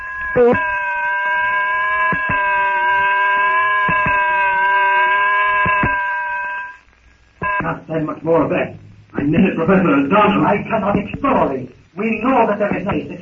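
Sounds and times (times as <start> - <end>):
weird unearthly jungle shriek: 0.0 - 6.8
speech: 0.4 - 0.7, 7.9 - 13.2.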